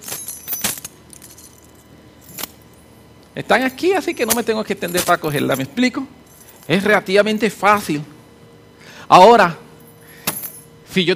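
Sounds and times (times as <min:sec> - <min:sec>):
keys jangling: 0:00.0 - 0:02.9, 0:03.5 - 0:07.6, 0:09.8 - 0:10.7
speech: 0:03.4 - 0:08.1, 0:09.1 - 0:09.6, 0:10.9 - 0:11.1.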